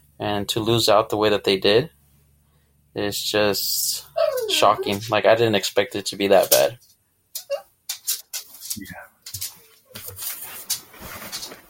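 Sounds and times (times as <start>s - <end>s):
speech: 0.2s - 2.0s, 2.9s - 6.9s
dog whining and yelping in a room: 4.1s - 5.1s, 7.4s - 7.7s.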